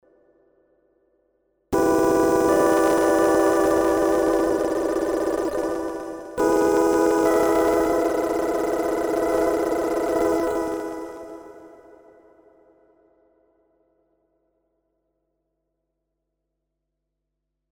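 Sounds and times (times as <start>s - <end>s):
loop with position modulation: 1.8s - 11.6s.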